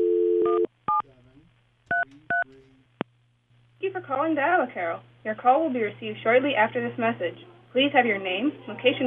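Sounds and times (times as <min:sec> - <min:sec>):
telephone dial tone: 0:00.0 - 0:00.7
faint low hum: 0:00.0 - 0:09.0
speech: 0:04.1 - 0:09.0.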